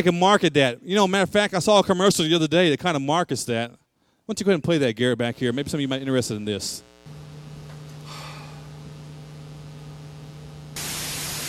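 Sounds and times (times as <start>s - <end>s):
speech: 0.0s - 7.2s
low electrical hum: 5.2s - 11.4s
crackling radio static: 5.7s - 11.4s.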